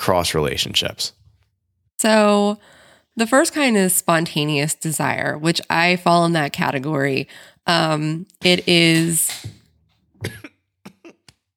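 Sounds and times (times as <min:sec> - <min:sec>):
speech: 0:00.0 - 0:01.2, 0:02.0 - 0:09.6, 0:10.2 - 0:10.4
person coughing from choking on inhaled coffee: 0:10.2 - 0:11.3.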